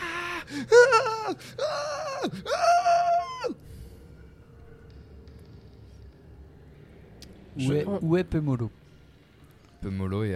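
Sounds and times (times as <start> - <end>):
voice imitating a cry echoing through a cauldron: 0.0 - 3.6
speech: 0.5 - 2.9, 7.6 - 8.8, 9.8 - 10.3.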